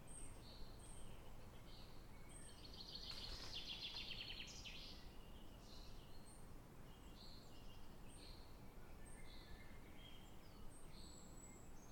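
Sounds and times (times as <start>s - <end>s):
birds singing in a forest around a castle in Scotland: 0.0s - 11.9s.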